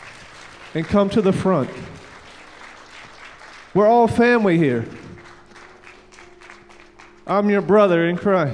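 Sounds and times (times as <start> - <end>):
crowd clapping in a room: 0.0 - 8.5
speech: 0.7 - 2.0, 3.7 - 5.0, 7.3 - 8.5.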